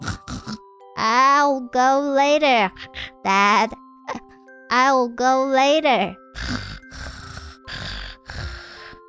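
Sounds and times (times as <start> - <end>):
child snoring: 0.0 - 0.6, 6.3 - 9.0
speech: 1.0 - 6.6.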